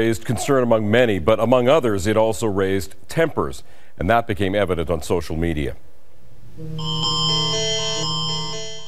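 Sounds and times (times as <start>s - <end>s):
speech: 0.0s - 5.9s, 6.6s - 7.4s
Amber Alert emergency notification tone from a phone: 6.6s - 8.8s.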